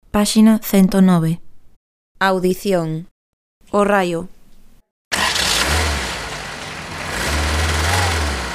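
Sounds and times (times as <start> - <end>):
speech: 0.2 - 1.4, 2.2 - 3.1, 3.7 - 4.4
car engine revving: 5.1 - 8.5.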